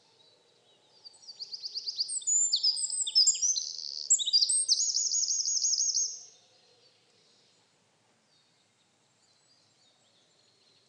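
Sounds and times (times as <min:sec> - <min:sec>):
Eurasian wren Troglodytes troglodytes singing a rolling trill: 0:01.1 - 0:06.4.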